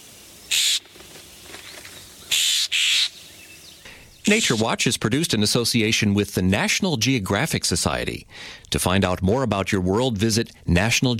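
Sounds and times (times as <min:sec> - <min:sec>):
Florida scrub jay giving harsh raspy calls: 0:00.2 - 0:04.8
speech: 0:04.3 - 0:11.1.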